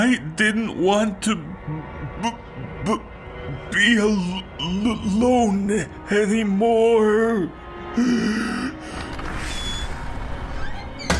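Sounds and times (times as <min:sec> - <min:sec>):
speech: 0:00.0 - 0:03.1, 0:03.7 - 0:08.9
back door creaking open with hinge squeal: 0:08.9 - 0:11.1.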